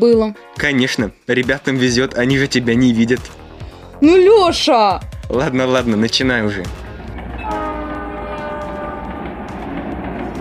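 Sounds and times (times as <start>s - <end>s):
speech: 0.0s - 3.4s, 4.0s - 6.8s
train rumbling along: 5.2s - 10.3s
sustained train horn blast: 6.8s - 10.3s.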